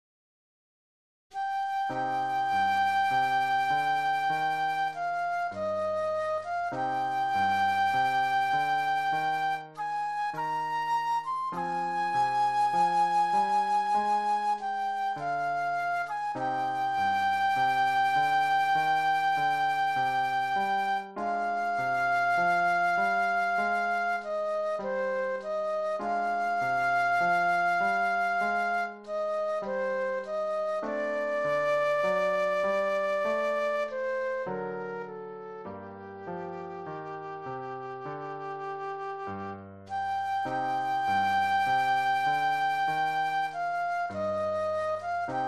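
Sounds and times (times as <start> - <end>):
classical romance flute solo: 1.4 - 45.4.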